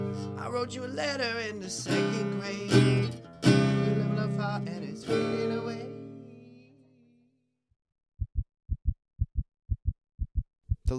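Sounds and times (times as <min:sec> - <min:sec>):
speech: 0:00.5 - 0:03.3, 0:04.2 - 0:05.9
steady heartbeat thumping in low lub-dub pairs: 0:08.2 - 0:10.9.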